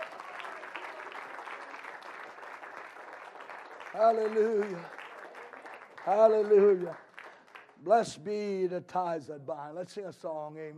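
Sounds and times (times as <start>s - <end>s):
congregation applauding: 0.0s - 7.9s
speech: 3.9s - 5.0s, 6.0s - 7.0s, 7.8s - 10.7s.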